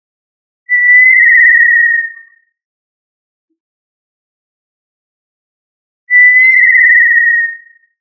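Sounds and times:
tinamou pure steady whistled call: 0.7 - 2.5, 6.1 - 7.9.

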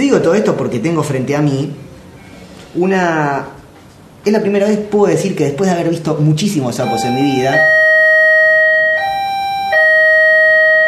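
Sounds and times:
speech: 0.0 - 1.9, 2.8 - 3.6, 4.2 - 7.8
electronic doorbell ringing: 6.8 - 10.8.

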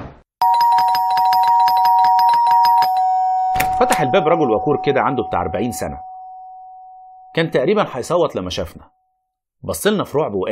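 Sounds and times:
apartment electric doorbell held down ringing: 0.4 - 7.3
speech: 3.8 - 6.1, 7.4 - 9.0, 9.6 - 10.5.

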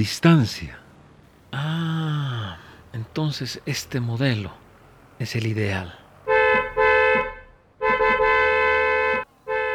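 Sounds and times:
speech: 0.0 - 0.8, 3.2 - 4.6, 5.2 - 6.0
long-range car horn honking: 6.2 - 9.7.

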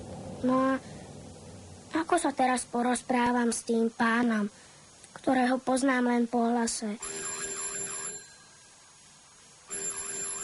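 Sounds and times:
speech: 0.4 - 0.9, 2.1 - 4.6, 5.2 - 7.2
doorbell ringing with a bright warbling tone: 7.0 - 8.5, 9.7 - 10.4.

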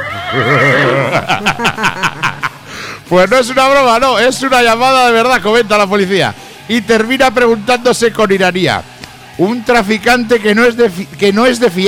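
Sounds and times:
horse neighing: 0.0 - 1.5
speech: 0.3 - 2.3, 3.1 - 11.8
laughter: 0.4 - 2.7.

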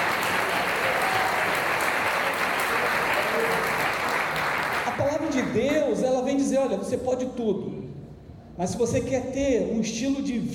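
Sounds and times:
church congregation applauding during a sermon: 0.0 - 5.8
speech: 5.5 - 8.0, 8.6 - 10.5.

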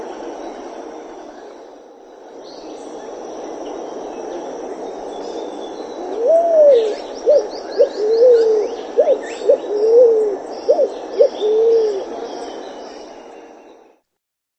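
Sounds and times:
pale-vented pigeon song: 6.0 - 12.3.

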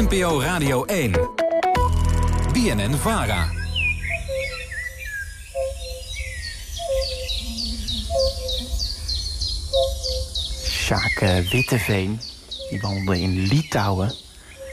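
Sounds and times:
speech: 0.0 - 1.4, 2.6 - 3.6, 10.9 - 14.2
high bird chirps: 2.6 - 14.7
European fire-bellied toad hooting along the Memel river in Lithuania: 3.5 - 11.5.

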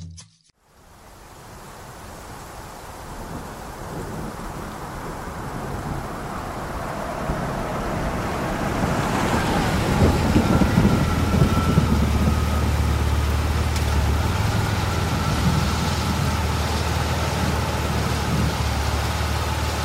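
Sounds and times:
first raindrops of a rain shower falling: 0.6 - 19.8.

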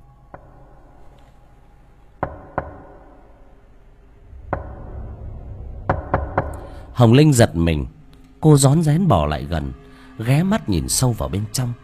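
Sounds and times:
knocking on a hard surface: 2.2 - 3.1, 4.4 - 5.0, 5.8 - 6.9
speech: 7.0 - 11.8.

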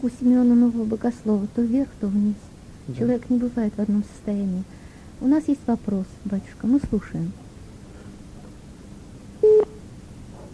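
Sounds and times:
speech: 0.0 - 7.4
telephone busy-signal beep after a dropped call: 9.4 - 9.8.

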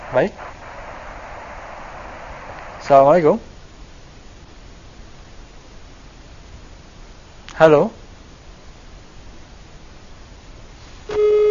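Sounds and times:
hiss: 0.0 - 11.4
speech: 0.1 - 0.6, 2.9 - 3.5, 7.6 - 8.0
telephone line tone beep after a call is cut off: 11.1 - 11.4.

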